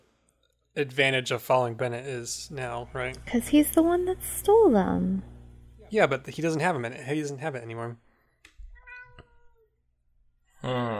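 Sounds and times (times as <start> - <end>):
speech: 0.8 - 5.3, 5.9 - 8.0, 10.6 - 10.9
cat meowing: 8.7 - 9.7.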